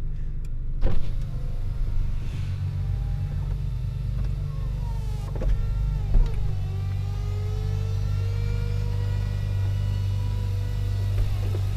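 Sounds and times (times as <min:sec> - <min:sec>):
Ferrari 4.5-litre naturally aspirated V8 engine idling: 0:00.1 - 0:11.7
Ferrari retractable hardtop roof clicks and thunks: 0:00.8 - 0:01.4, 0:03.4 - 0:07.0, 0:10.8 - 0:11.7
Ferrari retractable hardtop roof electric motor whine: 0:01.0 - 0:11.7.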